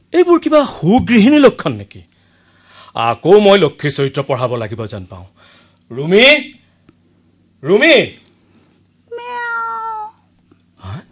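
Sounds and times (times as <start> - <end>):
speech: 0.1 - 2.1, 2.9 - 6.6, 7.6 - 8.2
black cat meowing: 9.1 - 10.3.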